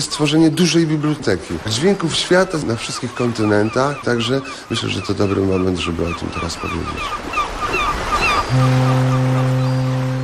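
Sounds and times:
speech: 0:00.0 - 0:09.7
sea and surf: 0:00.0 - 0:10.2
ship's foghorn sounding as the vessel enters port: 0:08.4 - 0:10.2.

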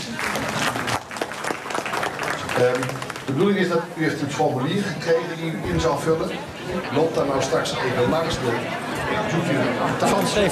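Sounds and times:
residents clapping at a neighbourhood meeting: 0:00.0 - 0:03.8
speech: 0:02.6 - 0:10.5.

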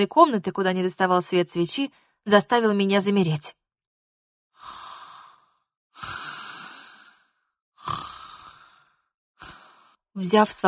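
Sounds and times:
speech: 0:00.0 - 0:03.6, 0:10.2 - 0:10.6
sleeping person snoring: 0:04.5 - 0:10.0.

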